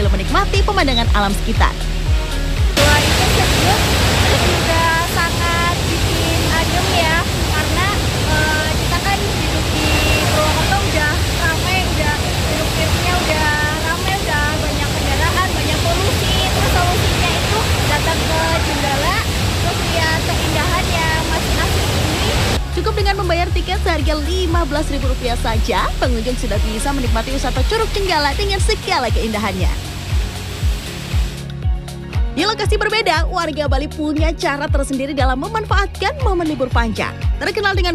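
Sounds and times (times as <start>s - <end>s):
speech: 0.4s - 1.9s, 23.5s - 29.9s, 32.4s - 37.9s
waterfall and rocky river rushing: 1.8s - 22.6s, 23.2s - 31.5s.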